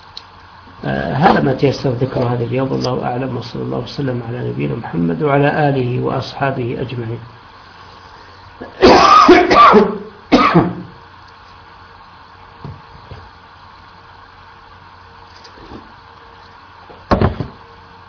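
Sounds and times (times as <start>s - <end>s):
low steady hum: 0.0s - 18.0s
speech: 0.8s - 7.4s, 9.3s - 10.7s
person coughing: 8.6s - 10.9s.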